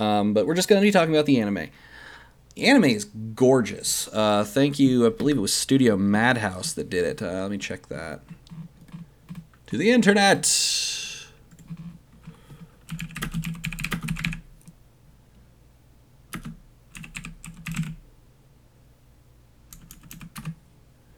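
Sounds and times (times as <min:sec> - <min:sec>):
speech: 0:00.0 - 0:02.0, 0:02.6 - 0:08.6, 0:09.7 - 0:11.1
loud clattering typing on a computer keyboard: 0:08.3 - 0:09.5, 0:11.5 - 0:14.8, 0:16.3 - 0:18.0, 0:19.7 - 0:20.6.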